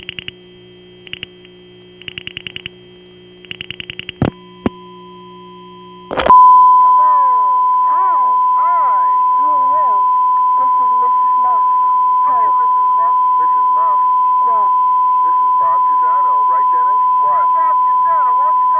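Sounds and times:
sharp clicks on a telephone line: 0:00.0 - 0:00.4, 0:01.0 - 0:02.8, 0:03.4 - 0:04.4
loud steady tone on a telephone line to a 780 number: 0:00.0 - 0:18.7
pulsed beeps on a telephone line: 0:03.5 - 0:18.7.

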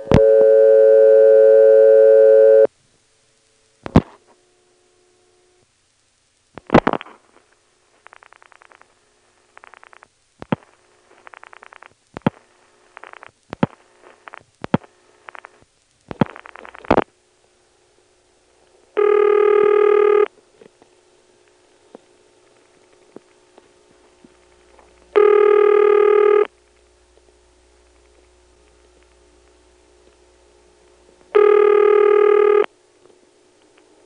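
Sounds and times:
long buzzing telephone line ring tones: 0:00.0 - 0:02.7, 0:19.0 - 0:20.3, 0:25.2 - 0:26.5, 0:31.4 - 0:32.7
telephone dialing and switching clicks and short buzzy bursts: 0:09.5 - 0:17.1, 0:19.0 - 0:20.4, 0:24.5 - 0:26.6, 0:31.3 - 0:32.7.

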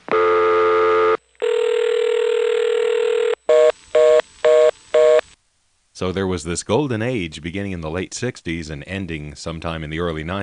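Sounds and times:
steady dial-type telephone tone: 0:00.1 - 0:05.2
speech: 0:06.0 - 0:10.4.

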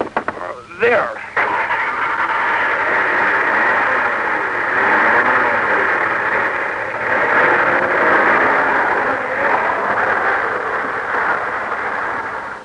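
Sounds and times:
black limousine engine roaring as it speeds away: 0:00.0 - 0:12.6
speech: 0:00.8 - 0:01.2.

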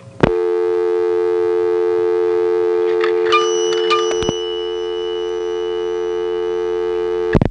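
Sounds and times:
telephone dial tone: 0:00.2 - 0:07.4
coins dropping with metallic clinks: 0:03.2 - 0:05.7.

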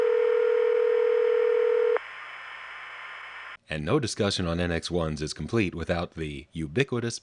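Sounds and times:
telephone ringback tone after call setup: 0:00.0 - 0:02.0
speech: 0:03.7 - 0:07.2.

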